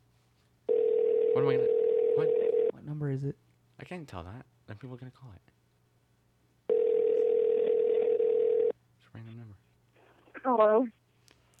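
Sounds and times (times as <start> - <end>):
phone ringing tone through the line: 0.7 - 2.7, 6.7 - 8.7
speech: 1.4 - 2.3, 3.0 - 5.6, 9.2 - 9.6, 10.4 - 11.0.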